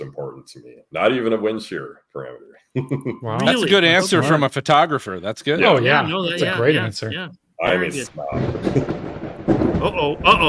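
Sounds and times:
speech: 0.4 - 10.4
thunder sound effect introducing a lightning round game segment: 8.1 - 10.4.

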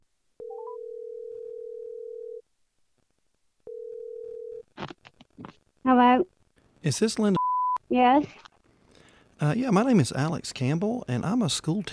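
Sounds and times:
steady telephone tone: 0.4 - 2.4, 3.7 - 4.6
speech: 4.8 - 8.4, 9.4 - 11.9.

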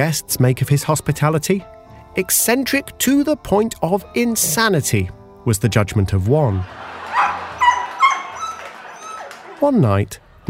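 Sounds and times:
speech: 0.0 - 6.9, 9.6 - 10.4
laughter: 6.5 - 10.4
dog barking at an intruder during a stage show: 7.1 - 9.6.

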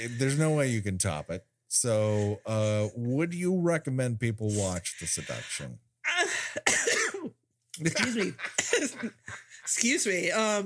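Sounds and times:
speech: 0.0 - 5.9, 6.6 - 10.6
person coughing in rough hacking fits: 6.2 - 7.4, 8.0 - 9.2
laughter: 7.8 - 10.2.

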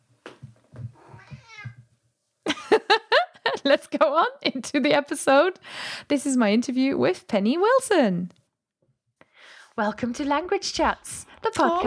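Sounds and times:
sick pet cat meowing: 1.0 - 1.8
laughter: 2.5 - 3.9
speech: 3.6 - 8.4, 9.8 - 11.8.

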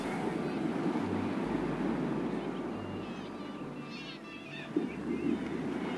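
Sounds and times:
blustery wind by the shore: 0.0 - 5.9
seagulls calling at the beach: 0.0 - 5.9.

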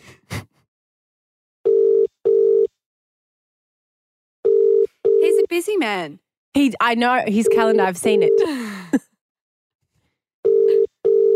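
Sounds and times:
phone ringback tone from an outgoing call: 1.7 - 2.7, 4.4 - 5.5, 7.4 - 8.5, 10.4 - 11.3
speech: 5.6 - 9.1.

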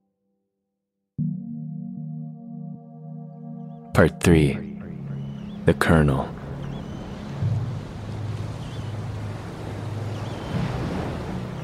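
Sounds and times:
speech: 4.0 - 4.7, 5.6 - 6.4
ocean surf: 4.2 - 11.6
low rumbling wind: 6.3 - 11.6.

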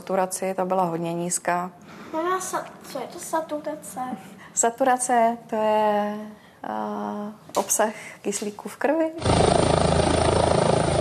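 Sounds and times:
speech: 0.1 - 9.7
air rescue helicopter rotor blades beating: 9.2 - 10.9.

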